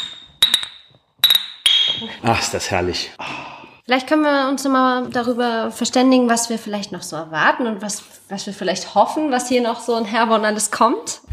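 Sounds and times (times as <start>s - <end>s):
glasses clinking in a toast in Herborn: 0.0s - 2.1s
speech: 2.0s - 11.3s.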